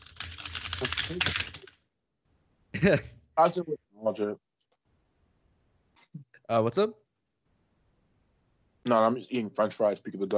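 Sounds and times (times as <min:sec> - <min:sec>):
computer keyboard keys clacking: 0:00.0 - 0:01.8
speech: 0:01.1 - 0:01.6, 0:02.8 - 0:04.4, 0:06.5 - 0:07.0, 0:08.8 - 0:10.3.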